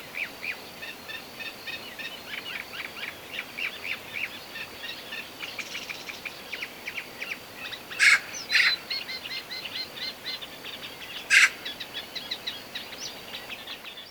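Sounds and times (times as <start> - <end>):
small birds chirping and twittering: 0.2 - 14.0
Eurasian magpie Pica pica giving harsh rasping notes: 8.0 - 8.8, 11.3 - 11.6.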